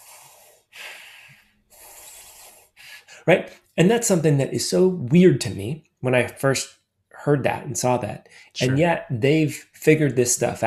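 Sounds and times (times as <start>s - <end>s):
long airy hissing breaths of the Ayurvedic cooling breath technique: 0.0s - 3.3s
speech: 3.2s - 10.6s.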